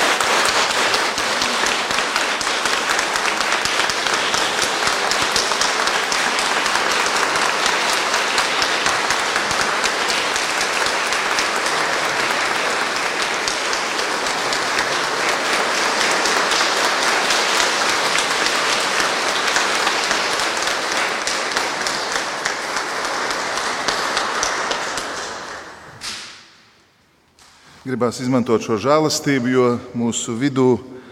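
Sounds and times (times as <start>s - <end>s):
large crowd applauding: 0.0s - 26.5s
speech: 27.9s - 31.0s.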